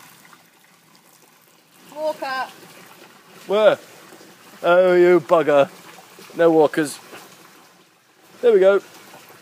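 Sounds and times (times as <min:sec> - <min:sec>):
person urinating outdoors, liquid trickling: 0:00.0 - 0:09.4
speech: 0:02.0 - 0:02.8, 0:03.4 - 0:03.9, 0:04.6 - 0:05.8, 0:06.4 - 0:07.0, 0:08.4 - 0:08.9.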